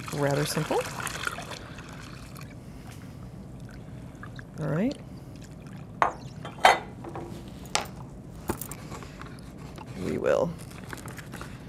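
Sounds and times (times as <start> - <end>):
hot water pouring into a bowl for making polenta: 0.0 - 2.6
speech: 0.1 - 1.2, 4.6 - 5.0, 10.2 - 10.7.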